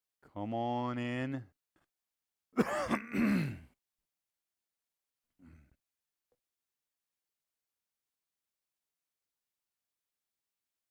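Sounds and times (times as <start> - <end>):
speech: 0.4 - 1.6, 2.6 - 3.6
person clearing throat in a rough rasp: 2.6 - 3.8.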